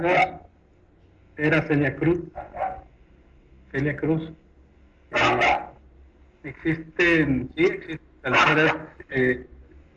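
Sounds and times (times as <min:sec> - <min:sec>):
speech: 0:00.0 - 0:00.5, 0:01.4 - 0:02.6, 0:03.7 - 0:04.4, 0:05.1 - 0:05.6, 0:06.4 - 0:09.5
small dog barking: 0:02.4 - 0:02.9, 0:05.2 - 0:05.8.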